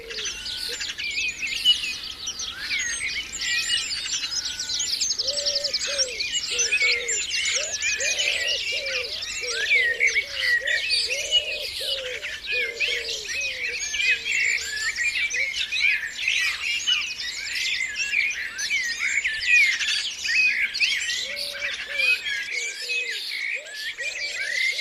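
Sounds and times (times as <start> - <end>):
dense chorus of wild birdsong with chirps and trills: 0.0 - 24.7.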